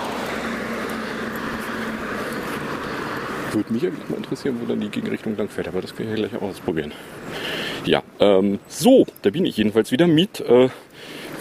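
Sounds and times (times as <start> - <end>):
bus driving past outside with engine drone and road noise: 0.0 - 7.9
speech: 3.5 - 11.3.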